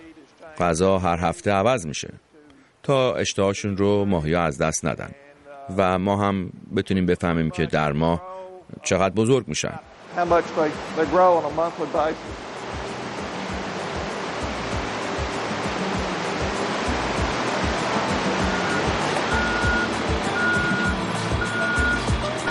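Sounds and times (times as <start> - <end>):
speech: 0.5 - 2.3, 2.9 - 12.5
fish hatchery truck engine and water rushing: 9.9 - 22.4
fish hatchery truck backup beeper: 16.2 - 22.4.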